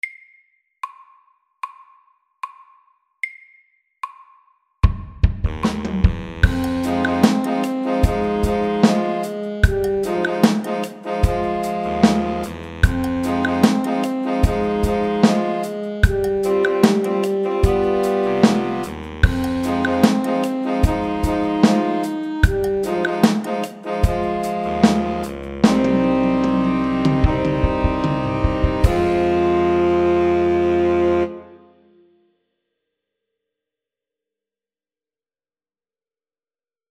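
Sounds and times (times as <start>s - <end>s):
slow funky drums: 4.8s - 31.3s.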